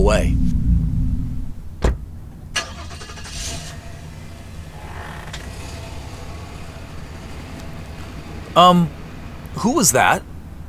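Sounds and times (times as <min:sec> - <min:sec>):
speech: 0:00.1 - 0:00.5, 0:08.6 - 0:09.0, 0:09.6 - 0:10.3
clunks and creaks: 0:01.8 - 0:08.6
rattling: 0:01.8 - 0:09.4
old Datsun car engine driving: 0:02.0 - 0:10.6.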